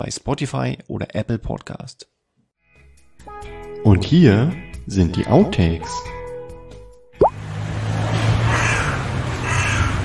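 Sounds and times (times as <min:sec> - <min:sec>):
speech: 0:00.0 - 0:02.1, 0:03.8 - 0:06.2
steady outdoor noise: 0:07.2 - 0:10.0
hooded crow cawing: 0:08.4 - 0:10.0.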